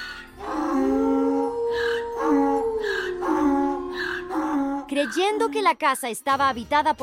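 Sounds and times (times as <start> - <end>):
donkey braying: 0.0 - 5.5
dog howling: 0.4 - 4.9
speech: 5.0 - 7.0.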